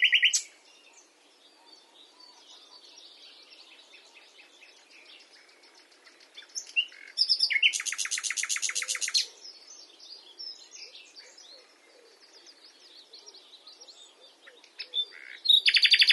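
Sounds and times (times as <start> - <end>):
common nightingale Luscinia megarhynchos trilling and twittering: 0.0 - 0.6, 6.0 - 9.7, 10.3 - 16.1.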